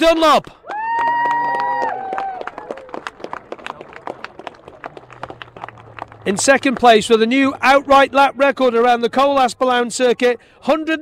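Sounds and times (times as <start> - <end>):
speech: 0.0 - 0.8, 6.3 - 11.0
crowd applause at a motorcycle road-racing awards ceremony: 0.6 - 7.2.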